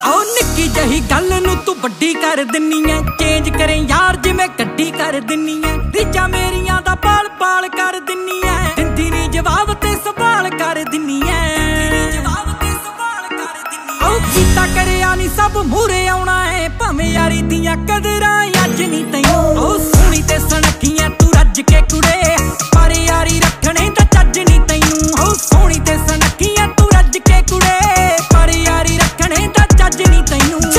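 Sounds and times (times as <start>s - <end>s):
Punjabi song: 0.0s - 30.7s.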